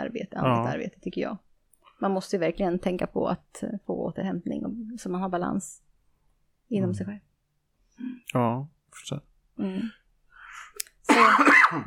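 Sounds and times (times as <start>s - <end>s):
speech: 0.2s - 5.9s, 6.7s - 7.3s, 8.0s - 10.0s, 11.1s - 11.8s
cough: 11.1s - 11.8s.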